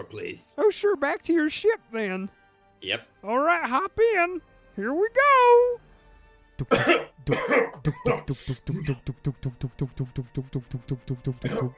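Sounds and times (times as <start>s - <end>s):
speech: 0.0s - 5.9s, 6.6s - 11.7s
person coughing in the back seat of a ride: 6.6s - 9.1s, 11.4s - 11.7s.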